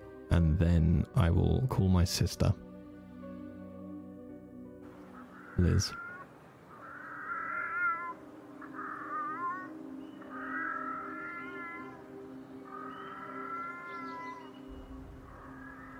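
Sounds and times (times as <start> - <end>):
speech: 0.3 - 2.7, 5.6 - 6.0
cat meowing: 5.4 - 9.7, 10.3 - 12.0, 12.7 - 14.4.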